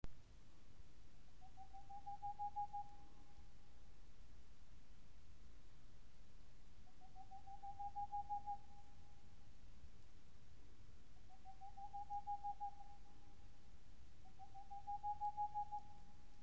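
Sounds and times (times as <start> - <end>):
boreal owl calling: 1.4 - 3.3, 6.8 - 9.2, 11.2 - 13.5, 14.2 - 16.3.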